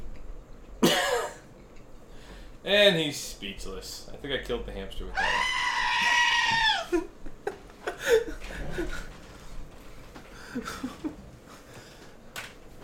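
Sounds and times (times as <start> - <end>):
speech: 2.6 - 6.1
screaming goat sound effect: 5.1 - 6.9
laughter: 6.8 - 9.2, 10.4 - 11.3.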